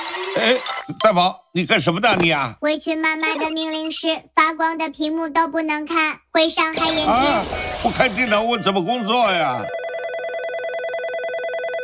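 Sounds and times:
speech: 0.4s - 9.8s
mobile phone ringing with a continuous electronic ringtone: 8.6s - 11.8s.

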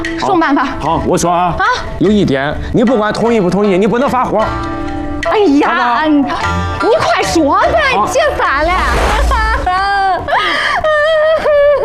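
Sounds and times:
speech: 0.2s - 9.4s
woman crying during a domestic argument: 9.2s - 11.8s.

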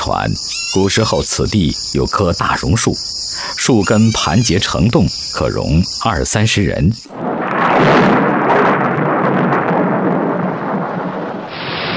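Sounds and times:
speech: 0.0s - 7.2s
rumbling thunder: 7.1s - 11.9s
sudden heavy rain with hail: 7.1s - 11.9s.

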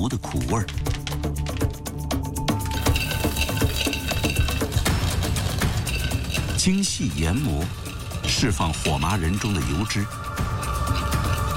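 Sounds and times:
speech: 0.0s - 1.5s, 6.6s - 10.5s
sustained tonal backdrop: 0.8s - 11.5s
stir-frying in an iron wok: 2.7s - 11.5s.

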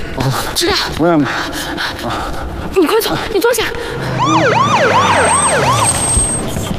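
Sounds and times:
speech: 0.3s - 6.1s
ambulance siren wailing: 4.1s - 6.7s.

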